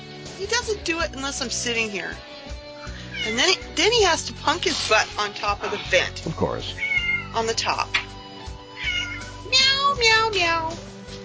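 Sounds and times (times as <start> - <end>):
speech: 0.4 - 2.4, 3.2 - 8.0, 9.4 - 11.0
cat meowing insistently: 2.9 - 3.7, 6.7 - 10.0.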